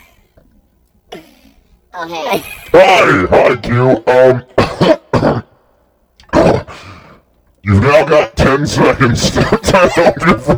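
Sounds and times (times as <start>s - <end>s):
person clearing throat: 1.1s - 1.6s, 4.5s - 5.6s, 6.3s - 6.8s
person coughing: 1.1s - 1.6s, 4.6s - 5.6s
speech: 2.0s - 5.0s, 7.7s - 10.5s
laughter: 9.2s - 10.5s.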